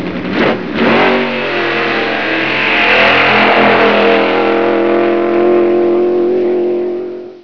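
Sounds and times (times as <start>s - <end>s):
car sound effects: 0.2s - 7.4s.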